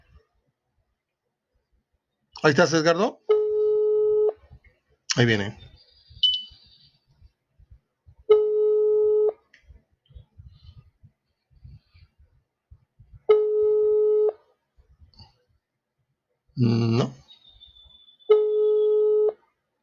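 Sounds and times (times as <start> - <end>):
speech: 2.4 - 3.4, 5.2 - 5.7
WhatsApp call ringing tone: 3.3 - 4.4, 8.3 - 9.4, 13.3 - 14.4, 18.3 - 19.4.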